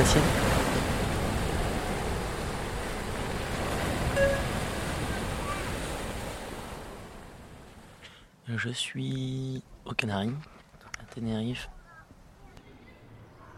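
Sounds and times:
speech: 0.0s - 0.4s, 8.5s - 10.6s, 11.2s - 11.8s
open-sea waves at night from a ferry deck: 0.0s - 9.4s
brief faint tone: 4.1s - 4.7s.

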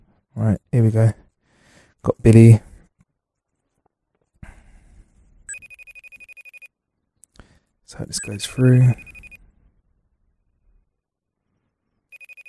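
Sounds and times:
speech: 0.4s - 1.2s, 2.0s - 2.7s, 7.9s - 9.1s
FaceTime call ringing tone: 5.5s - 6.7s, 8.1s - 9.4s, 12.1s - 12.4s.

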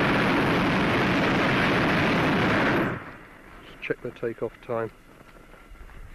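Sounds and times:
hot air balloon burner firing at takeoff: 0.0s - 3.9s
speech: 4.0s - 5.1s.

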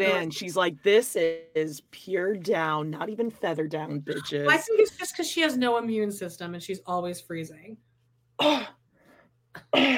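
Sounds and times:
speech: 0.0s - 8.8s, 9.6s - 9.9s
harsh loud coughs: 8.4s - 8.8s, 9.5s - 9.9s.

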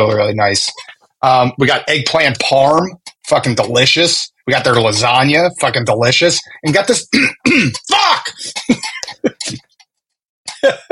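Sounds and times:
speech: 0.0s - 9.7s, 10.6s - 10.8s
throat clearing with harsh cough-like bursts: 7.1s - 9.7s.

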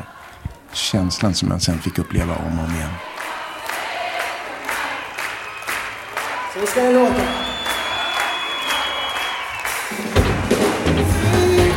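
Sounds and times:
concert audience singing along: 0.0s - 0.7s, 3.0s - 6.5s, 7.2s - 11.7s
large concert crowd roaring and cheering: 0.0s - 11.7s
speech: 0.7s - 3.1s, 6.6s - 7.5s.

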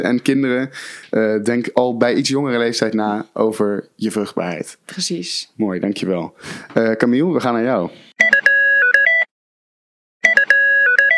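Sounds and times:
speech: 0.0s - 8.1s
retro cartoon-style gadget ringtone with beeping electronic melody: 8.2s - 9.3s, 10.2s - 11.1s.

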